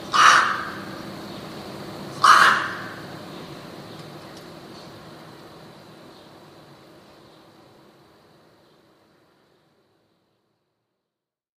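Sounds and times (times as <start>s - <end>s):
rook hoarse caws: 0.1s - 1.0s, 2.2s - 3.2s.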